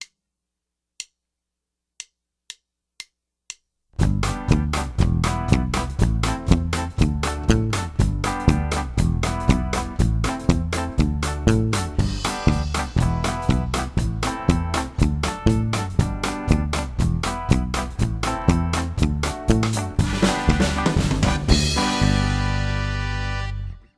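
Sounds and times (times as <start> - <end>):
ska bass line: 4.0 - 23.9.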